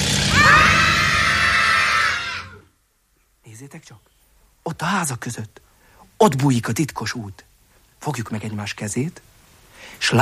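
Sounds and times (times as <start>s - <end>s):
group of voices shouting in a high-pitched yell: 0.1s - 2.7s
speech: 3.6s - 10.2s.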